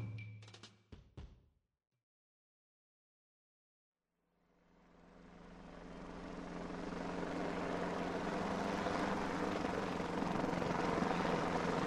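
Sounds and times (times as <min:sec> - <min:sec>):
helicopter flying low over wooded hilltops: 0:04.7 - 0:11.8.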